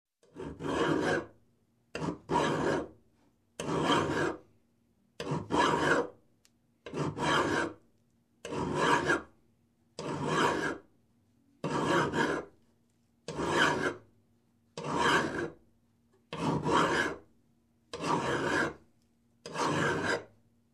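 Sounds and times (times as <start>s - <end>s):
hand saw cutting wood in single strokes: 0.2s - 1.3s, 2.0s - 2.9s, 3.6s - 4.4s, 5.2s - 6.1s, 6.9s - 7.8s, 8.4s - 9.3s, 10.0s - 10.8s, 11.6s - 12.5s, 13.3s - 14.0s, 14.8s - 15.6s, 16.3s - 17.2s, 18.0s - 18.8s, 19.4s - 20.3s.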